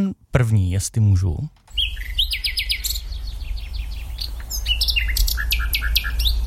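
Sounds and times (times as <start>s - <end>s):
speech: 0.0s - 2.1s
low hum: 0.0s - 6.4s
common nightingale singing trills, whistles and chirping phrases: 1.7s - 6.4s.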